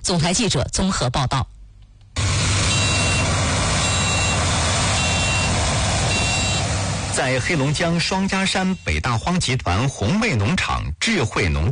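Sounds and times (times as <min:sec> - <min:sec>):
speech: 0:00.1 - 0:01.6, 0:07.2 - 0:11.7
three driverless combine harvesters droning in a field: 0:02.2 - 0:09.1
high electronic beep: 0:02.7 - 0:03.2, 0:03.8 - 0:04.4, 0:05.0 - 0:05.5, 0:06.1 - 0:06.6, 0:08.3 - 0:09.0.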